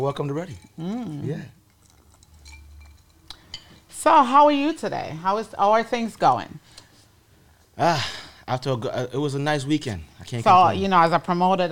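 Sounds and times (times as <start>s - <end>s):
speech: 0.0s - 1.6s, 4.0s - 6.7s, 7.8s - 11.7s
glasses clinking in a toast: 0.1s - 1.1s, 1.7s - 3.9s.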